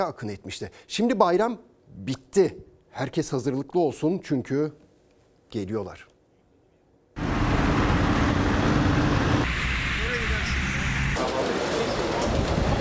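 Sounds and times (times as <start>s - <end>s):
speech: 0.0s - 4.8s, 5.5s - 6.1s
heavy road traffic of mostly small cars: 7.2s - 12.7s.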